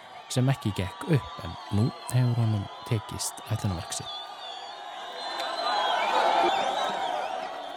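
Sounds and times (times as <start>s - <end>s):
large street crowd shouting and cheering in Omdurman, Sudan: 0.0s - 7.7s
speech: 0.4s - 4.2s
whoops and ululating calls from a street crowd: 0.6s - 7.7s.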